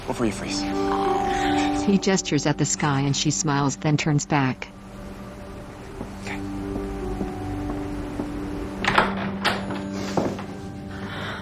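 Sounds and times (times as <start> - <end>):
low steady hum: 0.0 - 9.9
speech: 0.1 - 1.1, 1.8 - 4.8
door latch click: 8.8 - 9.8.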